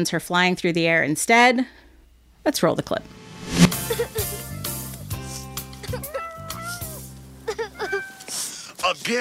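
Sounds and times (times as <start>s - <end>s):
speech: 0.0s - 1.8s, 2.4s - 3.6s, 8.9s - 9.1s
steady film soundtrack music: 2.8s - 4.7s
cat stuck in a tree meowing: 6.0s - 7.0s, 7.7s - 8.4s.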